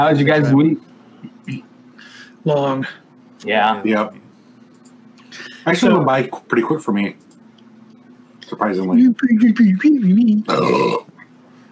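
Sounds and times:
speech: 0.0s - 0.9s, 1.5s - 1.7s, 2.4s - 4.2s, 5.3s - 7.2s, 8.5s - 11.1s
loud rough raspy belch: 10.5s - 11.1s.

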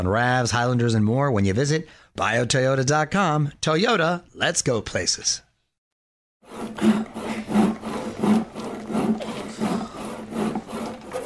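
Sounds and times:
speech: 0.0s - 5.5s, 6.5s - 7.0s
hand saw sawing wood: 6.4s - 11.2s.

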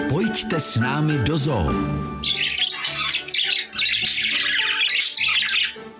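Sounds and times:
speech: 0.1s - 2.6s
budgerigars chattering and squawking: 1.5s - 5.9s.

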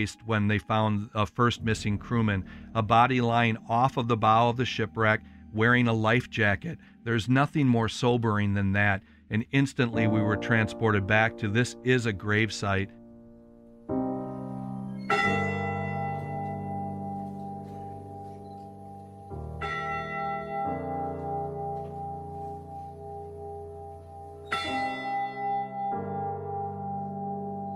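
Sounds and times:
speech: 0.0s - 13.0s
church bell tolling slowly: 1.6s - 6.5s, 9.8s - 13.1s, 14.0s - 27.7s.

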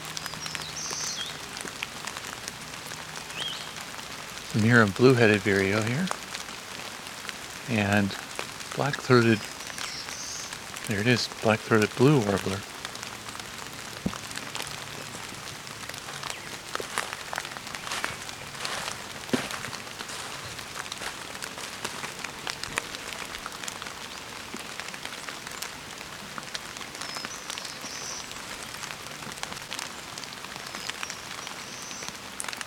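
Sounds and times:
steady rain falling: 0.0s - 32.6s
speech: 4.6s - 6.2s, 7.7s - 8.2s, 8.8s - 9.5s, 10.9s - 12.7s.

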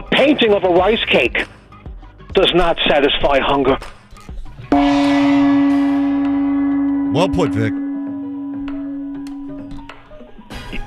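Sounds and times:
speech: 0.2s - 1.6s, 2.4s - 4.0s, 7.1s - 7.8s
loud gong strike with deep metallic tone: 4.7s - 10.7s.

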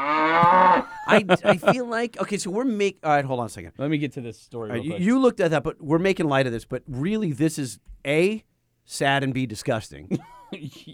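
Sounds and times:
cow mooing and lowing: 0.0s - 0.9s
laughter: 0.4s - 2.1s
speech: 1.1s - 10.9s.

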